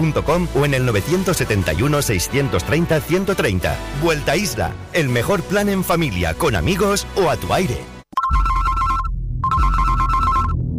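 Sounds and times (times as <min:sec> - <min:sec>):
speech: 0:00.0 - 0:07.9
telephone ringing with a steady pulsing electronic tone: 0:08.2 - 0:10.6.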